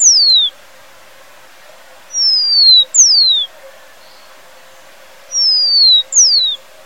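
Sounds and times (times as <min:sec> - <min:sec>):
Rufous-collared Sparrow giving clear whistled notes: 0:00.0 - 0:00.6, 0:02.1 - 0:06.7.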